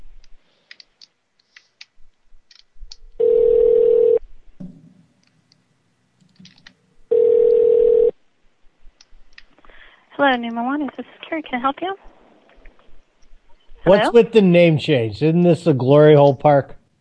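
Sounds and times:
telephone beeps on a call to an automated phone menu: 3.2s - 4.2s, 7.1s - 8.1s
speech: 10.3s - 12.1s, 13.8s - 16.8s.

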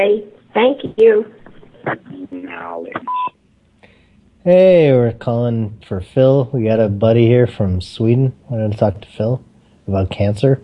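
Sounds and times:
speech: 0.0s - 3.3s, 4.4s - 10.6s
answering machine recorded greeting: 0.0s - 3.4s, 4.4s - 10.6s
answering machine beep: 3.0s - 3.3s.

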